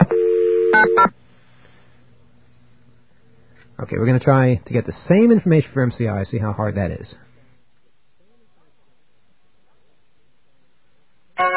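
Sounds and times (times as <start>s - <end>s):
touch-tone telephone DTMF key tones: 0.0s - 1.1s
speech: 3.8s - 7.3s.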